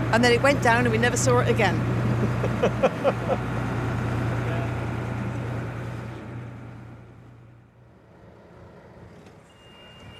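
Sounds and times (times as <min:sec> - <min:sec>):
boat engine running with a low drone and rumble: 0:00.0 - 0:09.2
speech: 0:00.1 - 0:03.6
laughter: 0:02.0 - 0:03.6.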